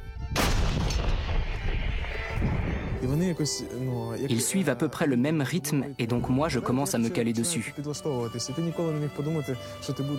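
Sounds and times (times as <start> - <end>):
heavy incoming and outgoing artillery fire barrage: 0.3 - 3.0
speech: 3.0 - 10.1.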